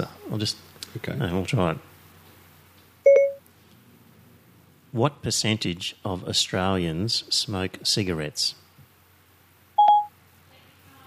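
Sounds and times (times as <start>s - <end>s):
speech: 0.0s - 1.9s, 4.9s - 8.6s
Siri voice assistant activation chime on a smartphone: 3.1s - 3.4s, 9.8s - 10.1s.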